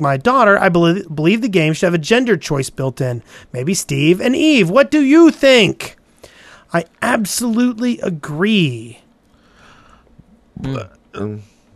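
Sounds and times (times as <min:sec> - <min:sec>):
speech: 0:00.0 - 0:06.0, 0:06.7 - 0:09.0, 0:10.6 - 0:11.5
person belching: 0:10.6 - 0:11.4.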